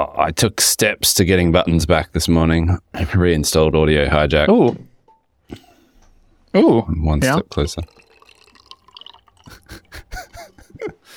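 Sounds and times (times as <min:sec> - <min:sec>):
speech: 0:00.1 - 0:04.9, 0:06.5 - 0:08.0
small dripping plinks of coffee: 0:06.0 - 0:10.6
coffee being poured over a microphone: 0:06.8 - 0:10.6
laughter: 0:09.5 - 0:11.1.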